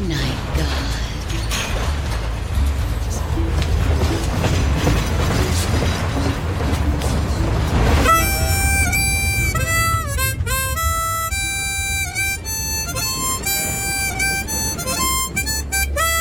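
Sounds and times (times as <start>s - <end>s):
train rumbling and clattering along the rails: 0.0s - 16.1s
shrill piercing tonal squeal of a train: 7.9s - 16.1s.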